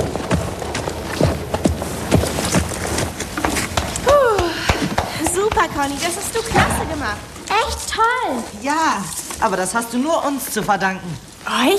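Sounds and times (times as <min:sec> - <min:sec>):
hoofbeats of a horse being ridden off an arena after a riding test: 0:00.0 - 0:07.3
light hiss: 0:00.0 - 0:11.7
speech: 0:05.7 - 0:11.7.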